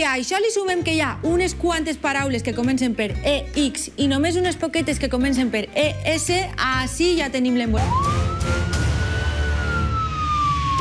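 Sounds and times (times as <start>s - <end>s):
speech: 0.0s - 8.6s
police siren wailing: 7.8s - 10.8s.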